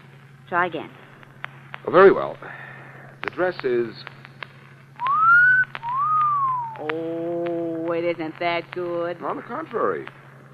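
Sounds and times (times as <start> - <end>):
faint low hum: 0.0 - 10.5
speech: 0.5 - 1.0, 1.8 - 2.7, 3.4 - 4.2, 6.8 - 10.2
person giving an admiring wolf whistle: 5.0 - 6.8.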